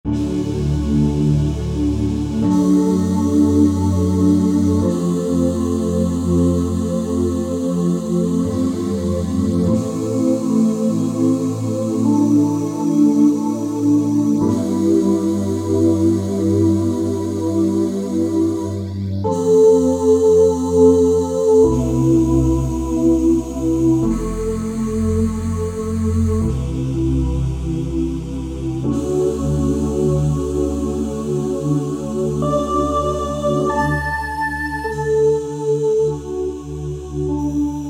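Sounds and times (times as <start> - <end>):
new age synthesized choir oohs: 0.1 - 37.8.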